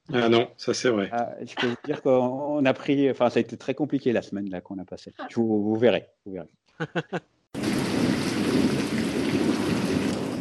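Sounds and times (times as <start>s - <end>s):
short voiced bursts: 0.1s - 2.6s
speech: 0.1s - 7.8s
laughter: 0.2s - 4.3s, 6.8s - 7.2s
steady downpour of heavy rain: 7.6s - 10.3s.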